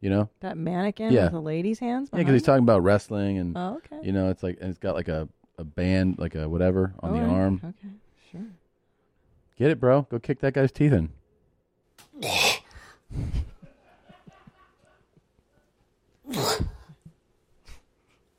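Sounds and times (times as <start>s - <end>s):
speech: 0.0s - 8.6s, 9.6s - 11.2s
laughter: 13.2s - 15.4s
short sharp fart sounds: 16.3s - 17.0s.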